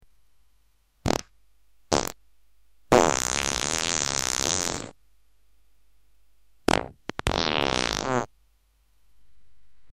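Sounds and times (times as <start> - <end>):
short bassy farts: 1.0 - 1.3, 1.9 - 2.2, 2.9 - 5.0, 6.7 - 8.3.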